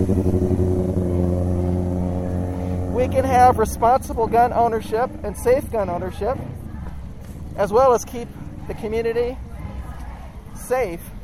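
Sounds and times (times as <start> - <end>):
motorcycles going by: 0.0 - 11.2
speech: 3.1 - 6.5, 7.6 - 9.4, 10.6 - 11.1.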